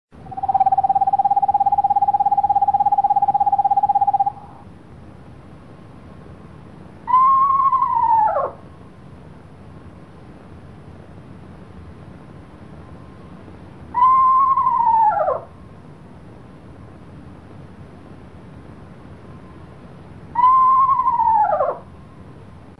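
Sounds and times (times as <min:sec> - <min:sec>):
Eastern Screech Owl calling: 0:00.2 - 0:04.6, 0:07.0 - 0:08.7, 0:13.9 - 0:15.6, 0:20.3 - 0:21.9.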